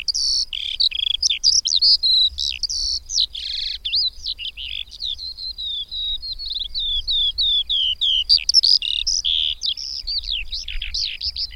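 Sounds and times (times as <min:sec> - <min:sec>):
Eurasian skylark singing: 0:00.0 - 0:11.5.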